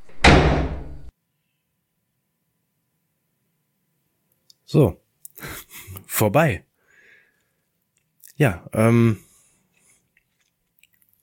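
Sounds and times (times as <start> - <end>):
heavy door slamming shut: 0.0 - 1.1
speech: 4.7 - 6.7, 8.4 - 9.2.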